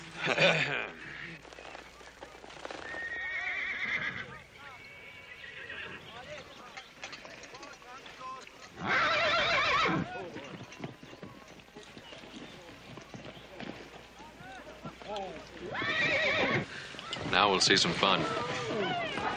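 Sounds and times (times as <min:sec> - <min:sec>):
laughter: 0:00.0 - 0:01.2
horse hooves clopping: 0:00.0 - 0:19.3
horse neighing at a riding lesson: 0:02.8 - 0:06.2, 0:08.8 - 0:10.2, 0:15.6 - 0:17.2
speech: 0:17.6 - 0:18.5.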